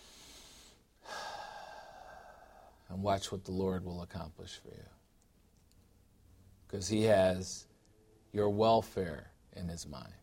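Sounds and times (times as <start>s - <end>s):
deep breath: 0.0s - 2.9s
speech: 2.9s - 5.0s, 6.7s - 7.7s, 8.3s - 10.2s.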